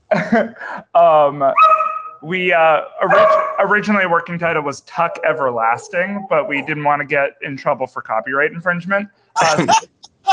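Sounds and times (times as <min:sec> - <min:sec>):
laughter: 0:00.1 - 0:01.6, 0:02.2 - 0:09.8
speech: 0:00.2 - 0:10.3
dog barking and whining: 0:01.6 - 0:02.2, 0:03.0 - 0:03.8, 0:04.9 - 0:06.8.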